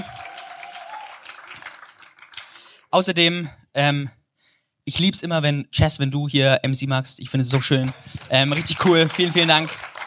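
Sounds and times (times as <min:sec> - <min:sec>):
audience applauding for the band: 0:00.0 - 0:02.8, 0:07.6 - 0:10.0
speech: 0:02.9 - 0:04.2, 0:04.8 - 0:09.9.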